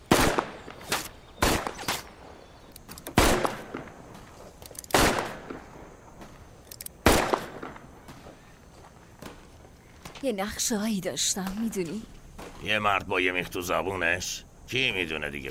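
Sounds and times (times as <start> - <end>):
gunshots fired during shooting practice: 0.0 - 2.2, 3.1 - 4.0, 4.9 - 5.7, 7.0 - 8.2
speech: 10.2 - 15.4.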